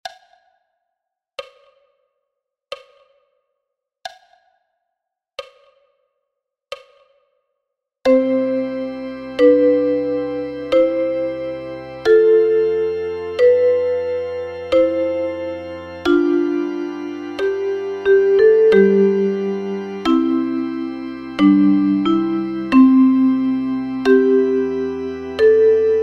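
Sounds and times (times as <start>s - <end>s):
chromatic harmonica playing chords: 8.1s - 26.0s.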